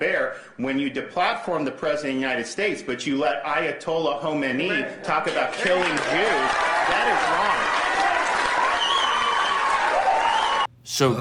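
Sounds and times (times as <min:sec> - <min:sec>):
speech: 0:00.0 - 0:07.9, 0:11.0 - 0:11.1
large crowd cheering and applauding: 0:05.2 - 0:10.7.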